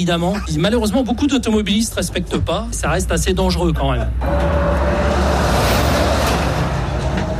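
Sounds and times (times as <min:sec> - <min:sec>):
speech: 0:00.0 - 0:05.4
constant road traffic noise: 0:00.0 - 0:07.3
heavy truck rumbling past on a road: 0:04.1 - 0:07.3.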